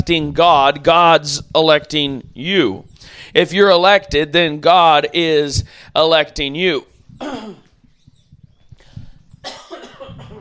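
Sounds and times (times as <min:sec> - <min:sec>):
speech: 0:00.0 - 0:07.6
person coughing with harsh bursts and throat rasps: 0:07.2 - 0:07.7, 0:09.4 - 0:10.3.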